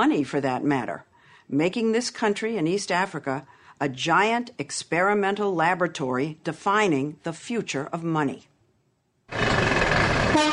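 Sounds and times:
speech: 0:00.0 - 0:08.5
rumble of bus engines at a bus station in Nairobi Kenya: 0:09.3 - 0:10.5
blaring horns honking at a bus station in Nairobi Kenya: 0:10.3 - 0:10.5.

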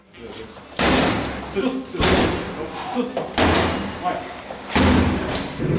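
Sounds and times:
heavy impacts on a door being forced in: 0:00.8 - 0:02.6, 0:03.4 - 0:04.0, 0:04.8 - 0:05.6.

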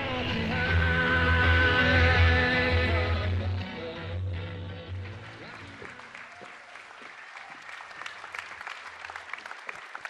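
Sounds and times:
song with a steady bass line: 0:00.0 - 0:05.9
small group of audience clapping unevenly: 0:05.0 - 0:10.0.

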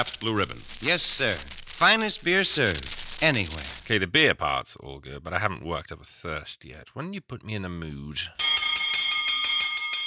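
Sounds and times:
speech: 0:00.0 - 0:08.6
high-pitched metallic bell ringing: 0:08.4 - 0:10.0.

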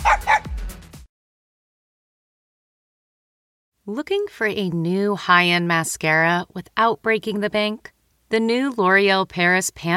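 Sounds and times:
dogs barking and yipping: 0:00.0 - 0:00.6
speech: 0:03.9 - 0:09.9.

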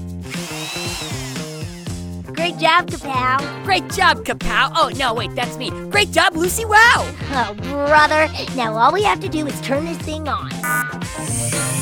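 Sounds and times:
power drill whirring: 0:00.2 - 0:02.2
speech: 0:02.4 - 0:10.6.

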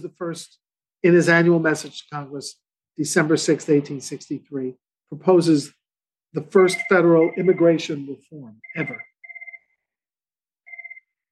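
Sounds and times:
speech: 0:00.0 - 0:09.1
telephone ringing with warbling electronic trill: 0:08.6 - 0:09.8, 0:10.7 - 0:11.3.

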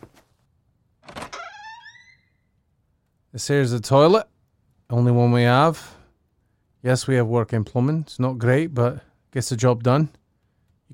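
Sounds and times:
bathroom door scraping open with squealing hinges: 0:01.0 - 0:02.5
speech: 0:03.3 - 0:04.3, 0:04.9 - 0:06.0, 0:06.8 - 0:10.2.

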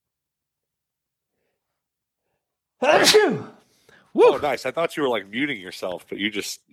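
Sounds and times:
speech: 0:02.8 - 0:03.5, 0:04.2 - 0:06.7
person sneezing: 0:02.8 - 0:03.7.

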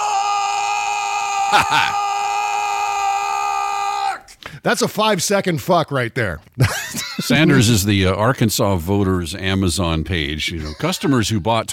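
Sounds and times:
man screaming an expletive: 0:00.0 - 0:04.3
speech: 0:01.5 - 0:02.0, 0:04.6 - 0:11.7.

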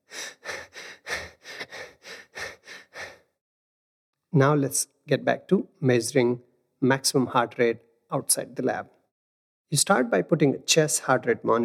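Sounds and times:
person imitating heavy labored breathing of running at zone 3 intensity: 0:00.0 - 0:03.4
speech: 0:04.3 - 0:09.0, 0:09.7 - 0:11.6.

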